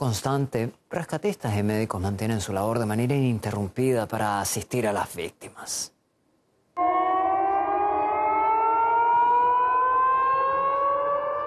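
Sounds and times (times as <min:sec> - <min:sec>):
speech: 0:00.0 - 0:06.0
air raid siren wailing: 0:06.8 - 0:11.4.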